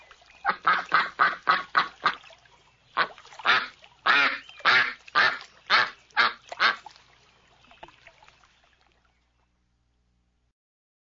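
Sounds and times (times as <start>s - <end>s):
ducks quacking: 0.4s - 2.3s, 2.9s - 6.9s.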